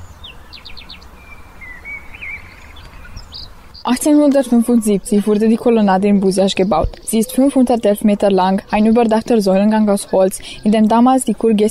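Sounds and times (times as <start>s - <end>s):
steady hiss: 0.0s - 11.4s
several birds chirping outdoors: 0.0s - 11.6s
speech: 3.9s - 11.6s.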